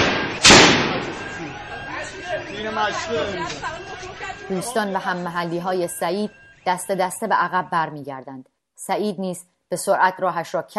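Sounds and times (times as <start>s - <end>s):
gunshot fired at protesters: 0.0s - 1.4s
protesters' agitated chatter and shouting: 0.0s - 6.6s
speech: 2.5s - 10.7s.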